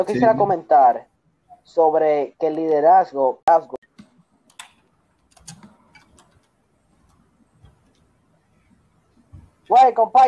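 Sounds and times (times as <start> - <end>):
speech: 0.0 - 3.8, 9.7 - 10.2
computer keyboard typing clicks and taps: 3.8 - 8.1.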